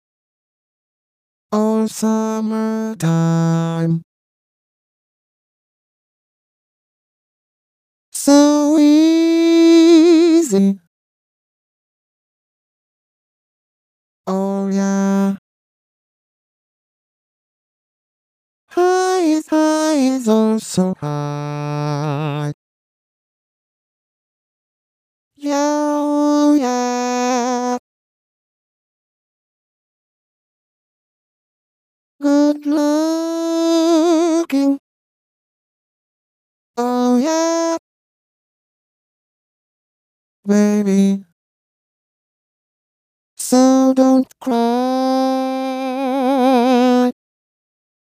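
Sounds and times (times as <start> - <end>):
vocaloid singing voice, back middle low: 1.5 - 4.1, 8.2 - 10.9, 14.3 - 15.4, 18.7 - 22.6, 25.4 - 27.8, 32.2 - 34.8, 36.8 - 37.8, 40.5 - 41.3, 43.4 - 47.2.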